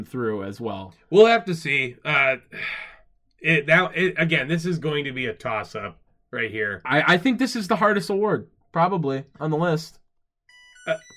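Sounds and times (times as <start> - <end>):
speech: 0.0 - 10.0, 10.9 - 11.1
electronic alert tone: 10.5 - 11.1.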